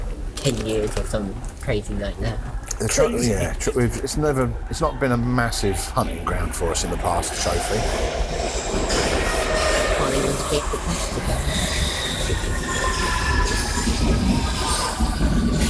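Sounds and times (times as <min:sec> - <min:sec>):
London Underground train rumbling: 0:00.0 - 0:15.6
rhythmic clatter of London Underground train: 0:00.0 - 0:15.6
speech: 0:00.4 - 0:09.2, 0:10.4 - 0:13.1
London Underground train wheels squealing: 0:03.4 - 0:15.6.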